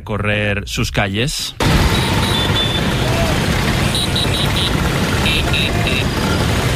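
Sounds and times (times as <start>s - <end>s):
speech: 0.0s - 2.4s
many Vespa scooter engines droning through the streets of Rome: 1.6s - 6.7s.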